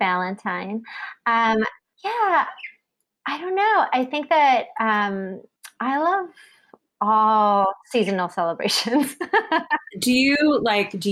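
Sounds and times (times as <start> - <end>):
speech: 0.0 - 11.0
pet bird chirping: 2.3 - 2.8.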